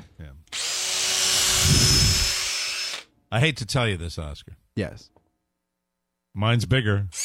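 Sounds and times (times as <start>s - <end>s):
motorized power drill whirring: 0.5s - 3.1s
speech: 3.3s - 5.2s, 6.4s - 7.2s.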